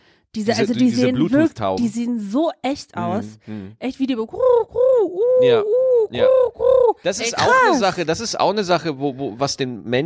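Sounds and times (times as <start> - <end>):
speech: 0.4 - 10.0
person imitating pigeon cooing: 3.0 - 3.5, 4.3 - 7.8.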